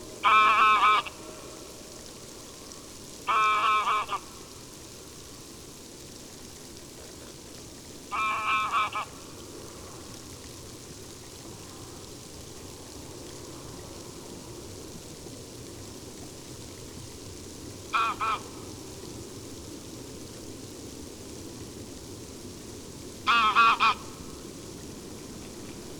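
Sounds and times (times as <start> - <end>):
greylag goose flight call: 0.0 - 1.6, 3.2 - 4.3, 8.1 - 9.2, 17.9 - 18.6, 23.2 - 24.2.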